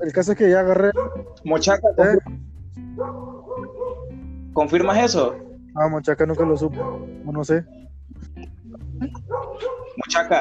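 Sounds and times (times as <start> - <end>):
speech: 0.0 - 2.4, 4.6 - 8.2, 9.0 - 10.3
dog barking and yipping: 0.8 - 1.8, 3.0 - 4.2, 4.8 - 5.6, 6.3 - 7.2, 9.2 - 10.2.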